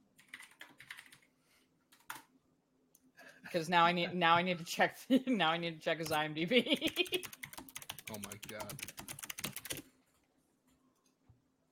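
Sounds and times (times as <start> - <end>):
rapid typing on a computer keyboard: 0.2 - 1.3, 6.8 - 9.9
speech: 3.5 - 7.4, 8.1 - 8.9.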